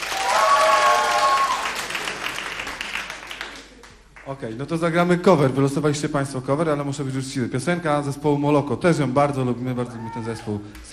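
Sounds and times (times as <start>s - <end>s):
audience applause voting for a song at a live concert: 0.0s - 4.2s
speech: 4.3s - 10.9s.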